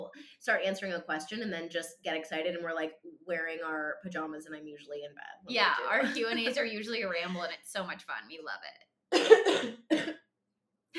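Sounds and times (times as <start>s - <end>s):
speech: 0.4s - 10.1s
sharp raspy coughs: 9.1s - 10.3s.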